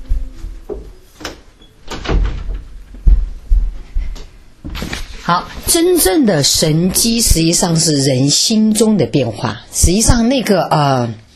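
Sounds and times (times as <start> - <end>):
door being closed: 0.1 - 3.3
speech: 5.3 - 11.2.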